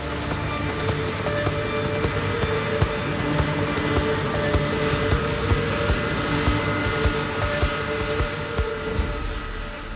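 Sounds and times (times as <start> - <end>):
KLM jet airliner roaring at full power on takeoff roll in dense fog: 0.0 - 9.9.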